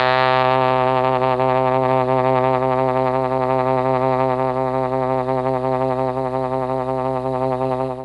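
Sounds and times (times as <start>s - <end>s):
mellotron trombone and trumpet note C2: 0.0s - 8.0s.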